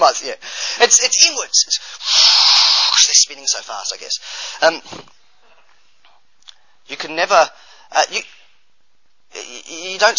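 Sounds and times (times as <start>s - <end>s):
speech: 0.2s - 5.1s, 6.9s - 8.4s, 9.4s - 10.1s
person sneezing: 2.0s - 3.1s.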